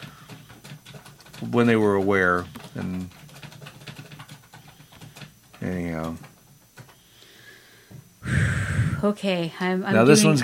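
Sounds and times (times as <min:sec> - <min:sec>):
speech: 0:01.4 - 0:03.2, 0:05.6 - 0:06.3, 0:09.0 - 0:10.4
strong sustained huffing exhale in a Lamaze breathing exercise: 0:07.0 - 0:09.0
soft breath intake: 0:07.0 - 0:09.1.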